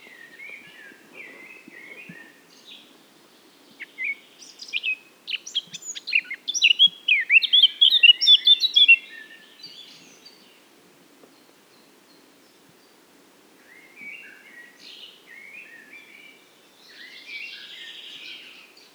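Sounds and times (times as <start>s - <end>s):
Eurasian blackcap singing, Sylvia atricapilla: 3.8s - 10.0s.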